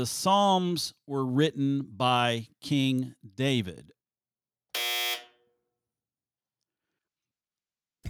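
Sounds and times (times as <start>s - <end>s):
speech: 0.0s - 4.0s
loud harsh buzzer: 4.7s - 5.6s.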